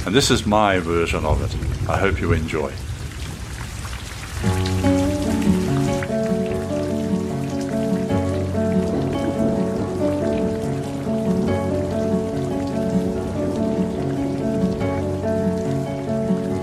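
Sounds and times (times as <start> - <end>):
speech: 0.0 - 2.9
steady hissing pouring rain: 0.0 - 16.6
gentle sustained instrumental music: 4.4 - 16.6.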